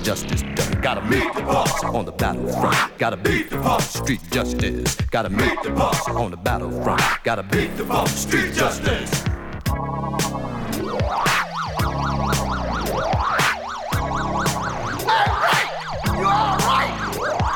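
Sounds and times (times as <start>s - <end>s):
speech: 0.0s - 9.3s
pounding music with heavy rhythmic drum hits: 0.0s - 17.5s
police car siren wailing in a rising-and-falling warble: 10.1s - 17.5s.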